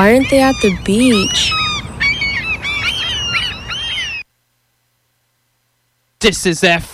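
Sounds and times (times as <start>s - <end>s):
speech: 0.0s - 1.6s, 6.2s - 6.9s
low rumble of outdoor noise: 0.0s - 4.0s
seagulls calling: 0.0s - 4.3s.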